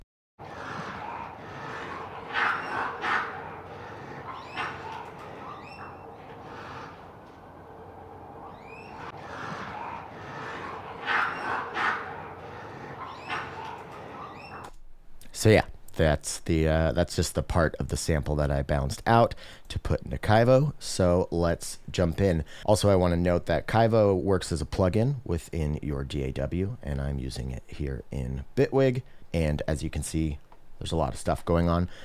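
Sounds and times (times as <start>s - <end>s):
raccoons fighting outdoors at a house, squealing and chattering: 0.4s - 7.1s, 8.4s - 14.7s
steady rustling background: 0.4s - 14.7s
speech: 15.4s - 32.0s.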